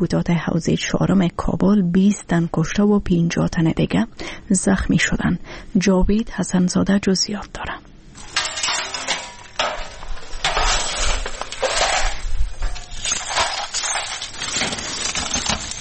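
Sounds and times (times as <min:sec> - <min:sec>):
speech: 0:00.0 - 0:07.8
broken glass shards scraping and clinking as gathered up: 0:08.2 - 0:15.7.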